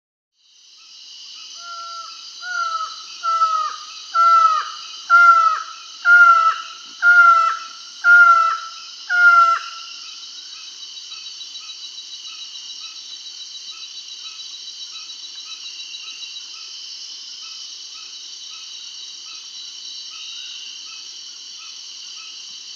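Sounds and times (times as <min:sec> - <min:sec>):
Slaty-backed Forest-Falcon Micrastur mirandollei calling in Peru: 0:01.6 - 0:10.0.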